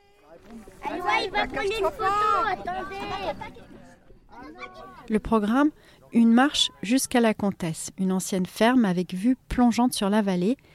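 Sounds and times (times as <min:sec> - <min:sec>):
excited children chattering: 0:00.1 - 0:05.2
speech: 0:00.4 - 0:03.7, 0:04.4 - 0:10.7.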